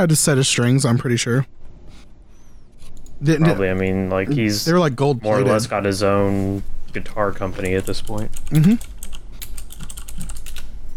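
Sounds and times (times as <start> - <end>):
speech: 0.0 - 2.0, 3.2 - 8.9
typing on a computer keyboard: 7.6 - 10.7.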